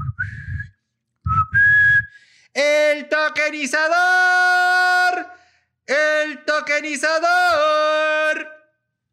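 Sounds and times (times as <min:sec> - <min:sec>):
person whistling an imitation of a knife-sharpener's pan-pipe call: 0:00.0 - 0:02.3
speech: 0:02.6 - 0:04.7, 0:05.9 - 0:08.5.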